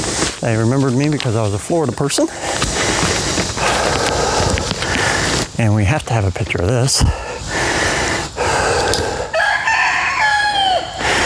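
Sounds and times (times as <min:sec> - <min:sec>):
steady outdoor noise: 0:00.0 - 0:11.2
speech: 0:00.4 - 0:02.8, 0:05.6 - 0:07.6
rooster crowing on a golf course: 0:09.2 - 0:11.0.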